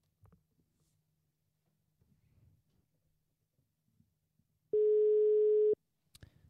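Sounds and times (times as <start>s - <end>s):
telephone call ringing tone: 4.8s - 5.8s.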